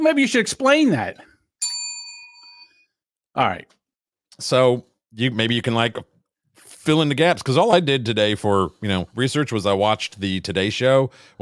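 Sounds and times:
speech: 0.0s - 1.3s, 3.4s - 3.8s, 4.4s - 6.1s, 6.8s - 11.4s
single bell struck once: 1.6s - 2.9s.

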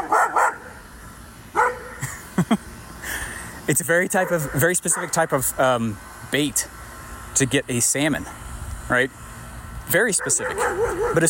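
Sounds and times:
dog barking: 0.0s - 0.7s, 1.5s - 2.0s, 4.2s - 5.2s, 10.1s - 11.2s
speech: 3.7s - 6.8s, 7.4s - 9.3s, 9.9s - 11.2s.

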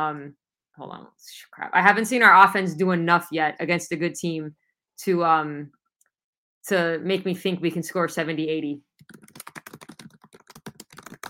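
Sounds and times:
speech: 0.0s - 5.8s, 6.6s - 9.5s
fast forceful typing on a computer keyboard: 9.0s - 11.2s.

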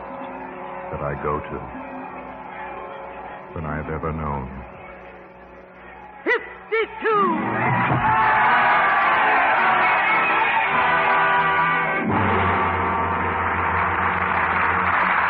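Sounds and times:
speech: 0.9s - 1.9s, 3.5s - 4.7s, 6.3s - 8.3s
large crowd roaring, many voices shouting and bellowing: 5.9s - 15.2s.

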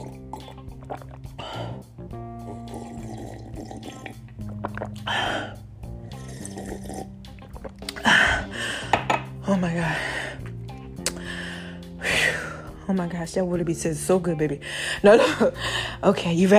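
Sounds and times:
loud gulp: 0.0s - 8.6s
wet sips and slurps of water: 0.0s - 8.6s
breathy exhales and gasps: 0.0s - 9.1s, 9.8s - 12.8s
speech: 0.9s - 2.3s, 9.6s - 10.2s, 12.9s - 16.5s.

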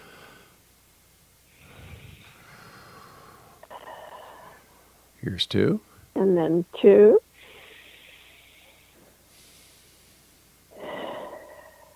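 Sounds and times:
person taking a very deep breath as a relaxation exercise: 1.5s - 5.0s, 7.4s - 11.9s
speech: 5.2s - 7.2s.

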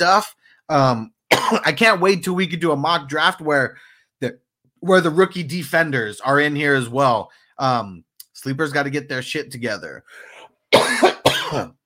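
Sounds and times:
speech: 0.0s - 10.3s, 10.9s - 11.8s
person coughing: 1.3s - 1.8s, 10.3s - 11.8s.

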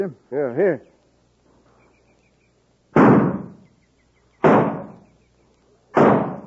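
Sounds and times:
gunshots fired from a grove: 3.0s - 3.6s, 4.4s - 5.0s, 6.0s - 6.4s.

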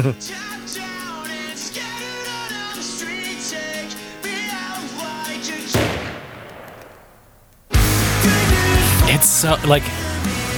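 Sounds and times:
speech: 0.0s - 0.8s, 9.1s - 10.4s
rock song: 0.0s - 10.5s
gunshot sound effect in a song: 5.8s - 7.3s.

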